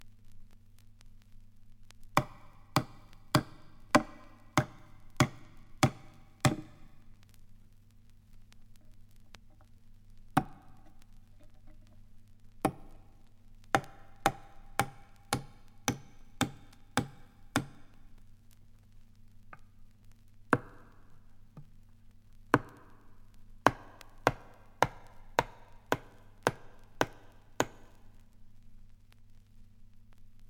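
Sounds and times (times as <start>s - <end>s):
hammer hits nailing a coffin lid down: 2.2s - 6.9s, 10.4s - 10.7s, 12.7s - 13.0s, 13.8s - 17.8s, 23.7s - 28.0s.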